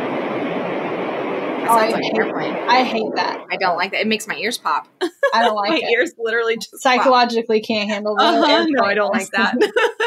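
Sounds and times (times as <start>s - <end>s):
airplane cabin drone: 0.0s - 3.5s, 5.3s - 6.0s, 8.2s - 9.6s
laughter: 1.7s - 2.1s, 5.0s - 6.1s, 8.0s - 10.0s
speech: 1.7s - 10.0s.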